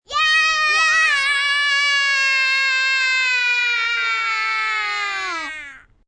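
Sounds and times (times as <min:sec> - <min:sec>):
small group of children cheering: 0:00.1 - 0:05.8.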